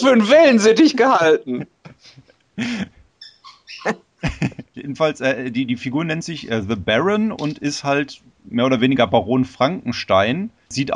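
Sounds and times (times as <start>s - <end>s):
speech: 0.0s - 3.0s, 3.8s - 10.9s
laughter: 1.4s - 2.9s, 4.2s - 5.4s
dog squeaking and whimpering: 3.2s - 4.0s.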